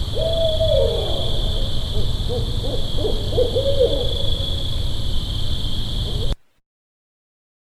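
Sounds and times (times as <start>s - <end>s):
barred owl hooting: 0.1s - 4.7s, 6.0s - 6.4s.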